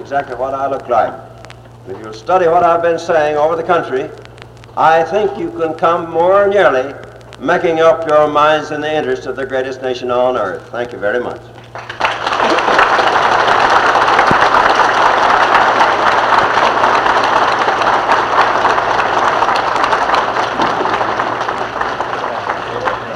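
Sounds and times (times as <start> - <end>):
speech: 0.0 - 4.2, 4.8 - 11.5
low constant rumble: 0.0 - 23.1
large crowd applauding and cheering at a railroad station: 11.6 - 23.1.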